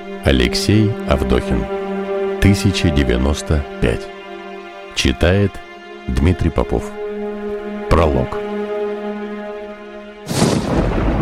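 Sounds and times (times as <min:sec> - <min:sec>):
humming musical tone: 0:00.0 - 0:10.3
speech: 0:00.1 - 0:01.8, 0:02.4 - 0:04.2, 0:05.0 - 0:07.0, 0:07.9 - 0:08.4
thunder crack and rumble: 0:10.3 - 0:11.2.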